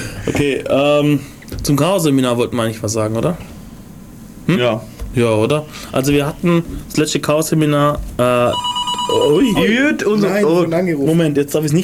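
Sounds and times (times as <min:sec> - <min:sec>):
speech: 0:00.2 - 0:03.5, 0:04.5 - 0:11.8
telephone electronic ring tone in a radio studio: 0:08.4 - 0:09.8.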